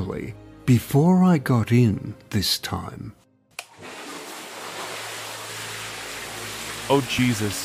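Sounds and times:
speech: 0.1 - 3.2, 6.9 - 7.6
water churning in a filled hot tub: 3.7 - 7.6.

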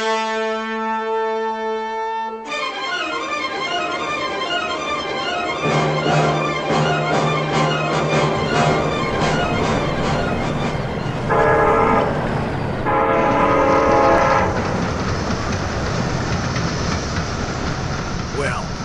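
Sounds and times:
long train horn blasts: 0.0 - 3.8, 5.6 - 14.8
train rumbling and clattering along tracks: 3.4 - 18.8.

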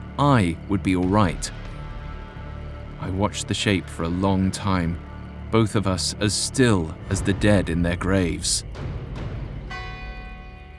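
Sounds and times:
speech: 0.2 - 1.6, 3.0 - 9.0
deep church tower bell striking the hour: 9.7 - 10.7.

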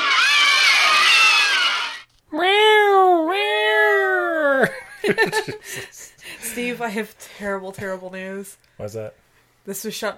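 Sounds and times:
crowd-like screaming in a film trailer: 0.0 - 2.1
cat meowing in a film trailer: 0.0 - 4.1
speech: 6.6 - 10.1.

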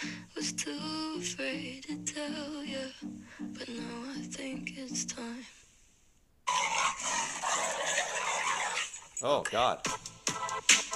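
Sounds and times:
speech: 0.5 - 5.6, 9.2 - 10.1
dog whining and yelping: 6.5 - 9.0.

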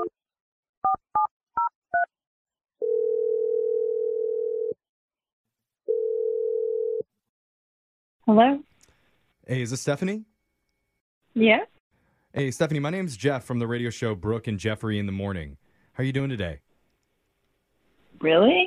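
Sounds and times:
long steady telephone line tones: 2.8 - 4.8, 5.9 - 7.0
speech: 8.3 - 8.7, 9.5 - 10.3, 11.4 - 11.7, 12.4 - 16.6, 18.2 - 18.6.

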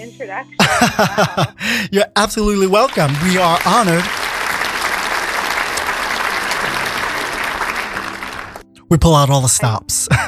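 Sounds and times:
speech: 0.0 - 4.2, 8.9 - 10.2
laughter: 0.6 - 8.4, 10.1 - 10.2
studio audience applause: 0.6 - 8.7.

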